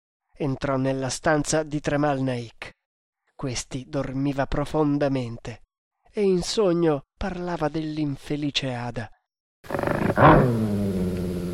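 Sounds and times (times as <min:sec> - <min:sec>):
speech: 0:00.4 - 0:02.8, 0:03.4 - 0:10.8
dog giving a deep rough low growl: 0:09.7 - 0:11.3.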